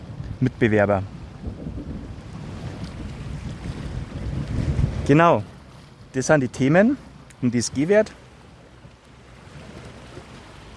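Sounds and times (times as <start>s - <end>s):
sea surf rushing with a small thunderstorm moving in over the mountains: 0.0s - 10.7s
speech: 0.4s - 1.6s, 5.1s - 5.5s, 6.1s - 8.2s.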